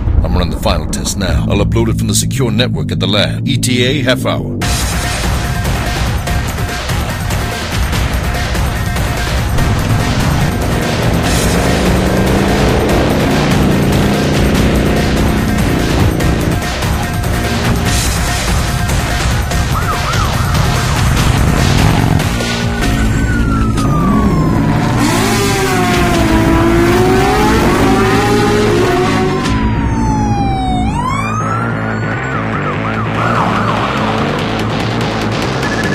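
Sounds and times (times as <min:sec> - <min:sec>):
autonomous ambulance road noise rumbling: 0:00.1 - 0:35.8
speech: 0:00.4 - 0:04.8
ambulance siren wailing: 0:08.7 - 0:34.4.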